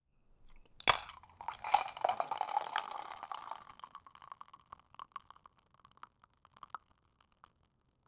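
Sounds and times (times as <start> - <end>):
milk being poured: 0.6 - 8.0.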